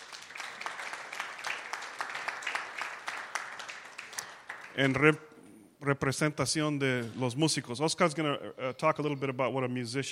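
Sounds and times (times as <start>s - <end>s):
audience applauding: 0.0s - 5.2s
speech: 4.8s - 10.1s.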